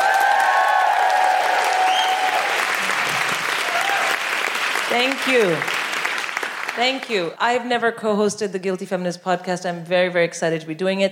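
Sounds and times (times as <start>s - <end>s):
audience whooping for a comedian at a live stand-up comedy show: 0.0s - 4.6s
audience clapping for a comedian at a live stand-up comedy show: 0.0s - 7.4s
speech: 4.9s - 5.8s, 6.8s - 11.0s.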